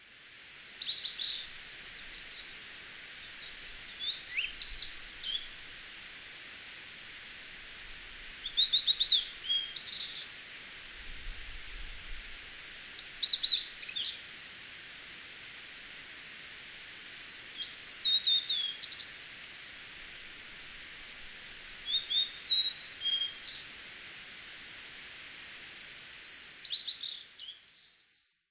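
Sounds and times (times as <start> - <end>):
faint background hiss: 0.0 - 28.5
blue-and-white flycatcher singing bright whistles in Tanzawa, Japan: 0.4 - 6.4, 8.4 - 10.3, 13.0 - 14.3, 17.5 - 19.3, 21.8 - 23.7, 26.2 - 28.3.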